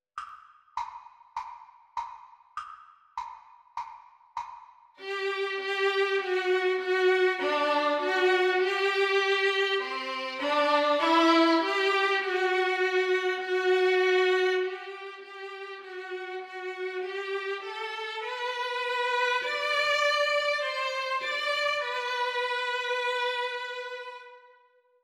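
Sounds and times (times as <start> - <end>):
violin duet: 5.0 - 24.5.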